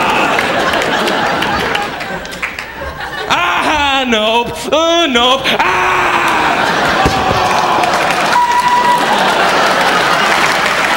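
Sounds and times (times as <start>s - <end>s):
crowd clapping steadily and densely: 0.0s - 3.3s, 6.6s - 10.9s
laughter: 0.0s - 10.9s
speech: 4.0s - 6.2s
scattered cheers: 5.8s - 10.9s
whistle: 8.3s - 9.2s.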